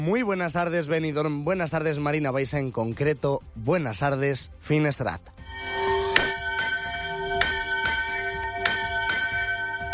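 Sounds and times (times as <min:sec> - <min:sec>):
speech: 0:00.0 - 0:05.8
church bells swinging and pealing: 0:05.5 - 0:09.9.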